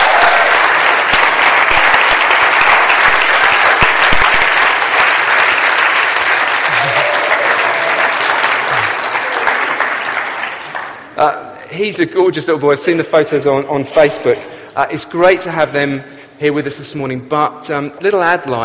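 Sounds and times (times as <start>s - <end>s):
faint cheers: 0.0s - 0.7s, 6.6s - 9.8s
room full of people clapping: 0.0s - 11.2s
speech: 11.2s - 18.6s.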